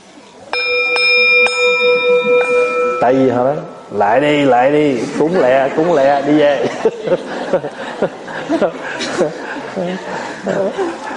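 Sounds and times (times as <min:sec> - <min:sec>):
temple bell struck with a mallet: 0:00.5 - 0:05.2
speech: 0:03.0 - 0:11.1
laughter: 0:04.9 - 0:11.1.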